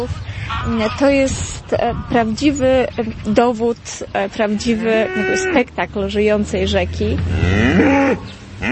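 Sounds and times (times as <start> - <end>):
steady low rumble of outdoor noise: 0.0 - 8.7
village cows mooing by the river at Brzostowo: 4.6 - 5.9, 6.7 - 8.7.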